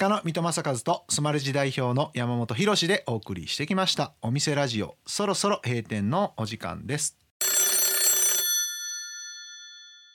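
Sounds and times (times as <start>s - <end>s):
speech: 0.0s - 7.2s
telephone bell ringing: 7.4s - 10.1s.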